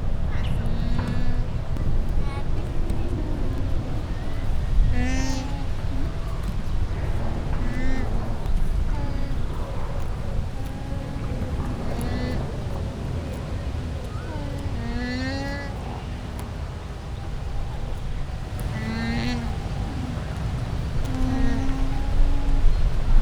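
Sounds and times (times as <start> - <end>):
llama at a zoo in Győr: 0.0 - 23.1.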